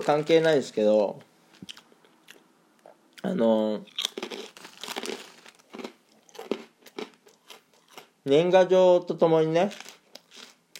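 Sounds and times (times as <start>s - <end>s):
speech: 0.0s - 1.8s, 3.2s - 4.0s, 8.2s - 9.8s
senbei rice crackers from Japan being chewed: 3.8s - 8.2s, 9.7s - 10.7s.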